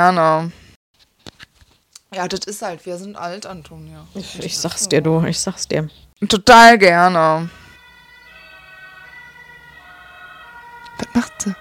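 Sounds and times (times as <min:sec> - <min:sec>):
speech: 0:00.0 - 0:00.6, 0:02.1 - 0:07.6, 0:11.0 - 0:11.6
emergency vehicle siren passing: 0:07.4 - 0:11.6.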